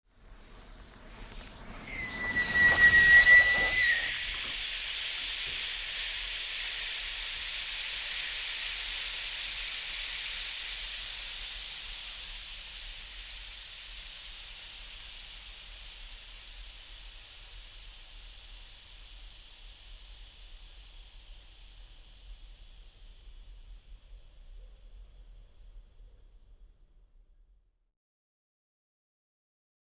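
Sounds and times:
car tire going flat fast: 0:01.4 - 0:23.2.

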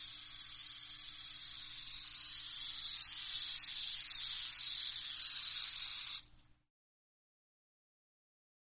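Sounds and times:
rattlesnake giving a steady hissing rattle: 0:00.0 - 0:06.2.

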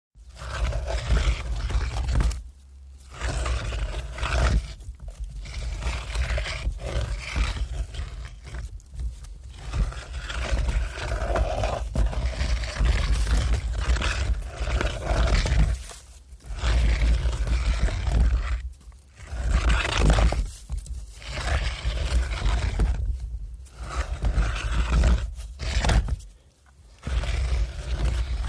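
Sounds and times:
rocks dragging on sand: 0:00.2 - 0:28.4.

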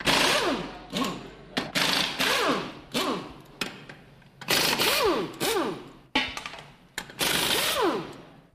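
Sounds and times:
air impact wrench drill: 0:00.0 - 0:03.4, 0:04.4 - 0:05.9, 0:07.1 - 0:08.3.

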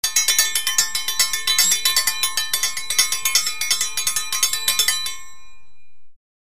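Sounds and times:
triangle strikes: 0:00.0 - 0:06.2.

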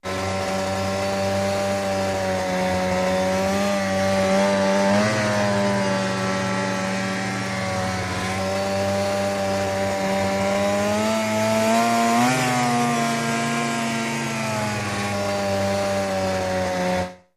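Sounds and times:
snowmobile engine running steadily: 0:00.0 - 0:17.3.

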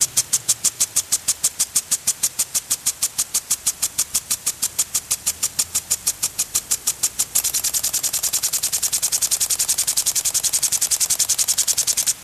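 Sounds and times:
metal sprinkler: 0:00.0 - 0:12.2.

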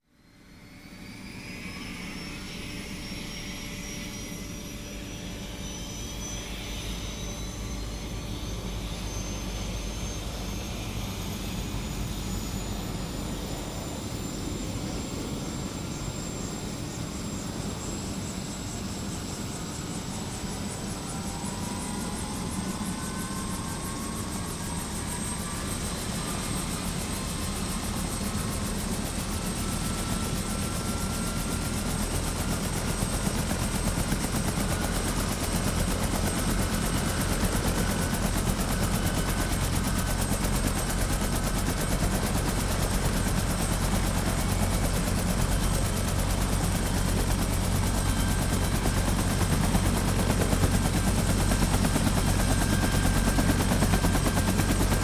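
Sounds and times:
UH-1N Huey helicopter starting up: 0:00.6 - 0:55.0.

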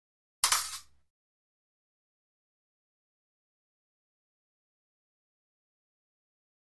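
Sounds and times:
fencing swords sliding: 0:00.4 - 0:00.9.

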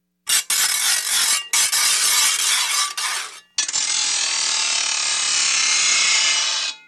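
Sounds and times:
metal grinding and sliding from grinders: 0:00.3 - 0:06.8.

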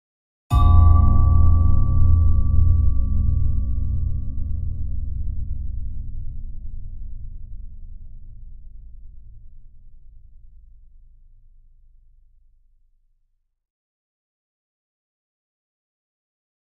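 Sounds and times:
bell chime with LFE and reverb: 0:00.5 - 0:04.7.

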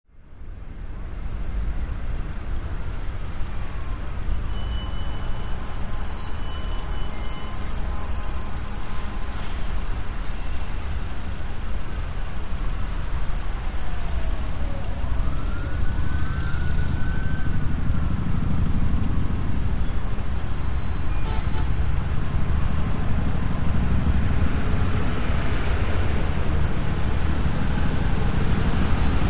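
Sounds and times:
heavy traffic jam in a big city: 0:00.1 - 0:29.2.

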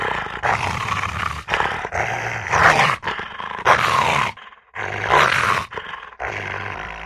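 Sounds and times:
Rottweiler snarling and barking: 0:00.0 - 0:07.0.

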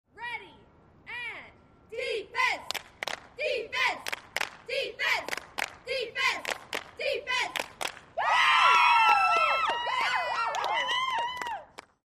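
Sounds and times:
cheerleaders cheering: 0:03.4 - 0:11.6.

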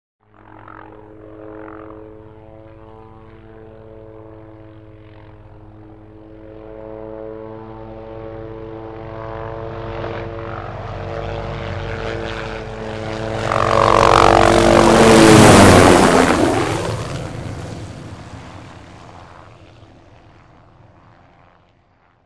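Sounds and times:
Hughes 500 helicopter passing by: 0:00.2 - 0:22.2.

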